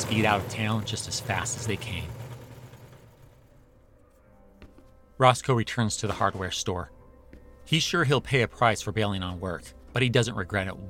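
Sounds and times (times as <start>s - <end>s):
hot Model T car engine chugging after hand-cranked restart: 0.0s - 3.8s
speech: 0.1s - 2.2s, 5.2s - 7.0s, 7.7s - 10.8s.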